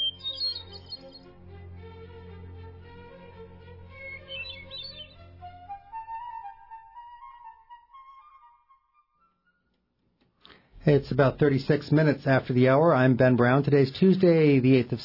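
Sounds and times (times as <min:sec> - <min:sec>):
bird singing chirps and whistled notes: 0:00.0 - 0:01.2, 0:03.9 - 0:05.3
speech: 0:10.8 - 0:15.0.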